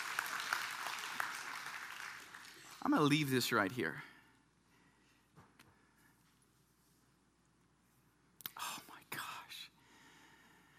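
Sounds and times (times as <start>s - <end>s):
scattered applause from a small audience: 0.0s - 3.2s
speech: 2.8s - 4.1s.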